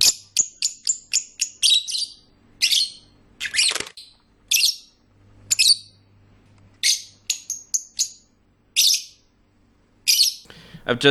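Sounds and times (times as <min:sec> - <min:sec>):
birds singing and chirping: 0:00.0 - 0:06.2, 0:06.8 - 0:11.1
speech: 0:10.9 - 0:11.1.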